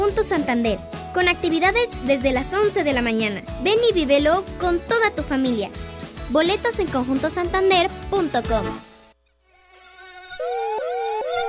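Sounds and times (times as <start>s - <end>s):
speech: 0.1s - 8.9s
dengue mosquito buzzing: 8.8s - 11.4s.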